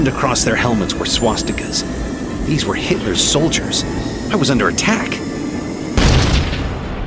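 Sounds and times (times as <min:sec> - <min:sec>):
speech: 0:00.0 - 0:05.3
steady drone: 0:00.0 - 0:07.0
loud explosion rocking an airplane: 0:06.0 - 0:07.0.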